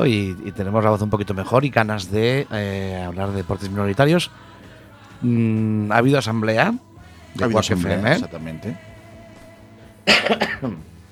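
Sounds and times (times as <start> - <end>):
speech: 0.0 - 4.6, 5.2 - 8.9, 10.1 - 10.9
harsh cough: 10.1 - 10.8.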